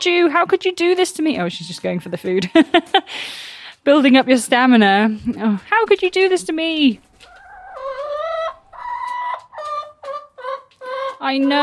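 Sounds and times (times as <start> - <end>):
hens clucking and squawking: 0.0 - 2.9, 6.3 - 11.6
speech: 0.0 - 7.1, 11.2 - 11.6.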